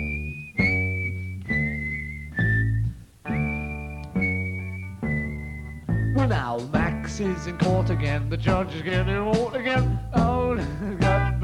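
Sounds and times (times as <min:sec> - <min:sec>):
high clear whistling of a melody: 0:00.0 - 0:06.7
full band backing: 0:03.3 - 0:11.4
speech: 0:06.3 - 0:11.0.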